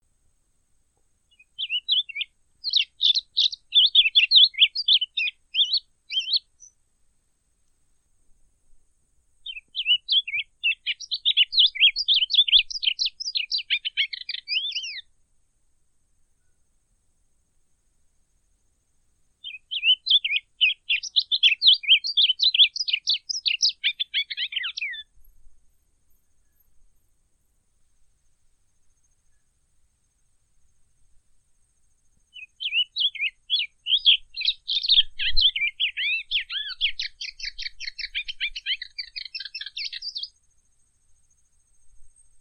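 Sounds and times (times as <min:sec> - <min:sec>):
Coleiro do Brejo singing: 0:01.3 - 0:06.8, 0:09.4 - 0:15.2, 0:19.4 - 0:30.8, 0:31.8 - 0:42.3.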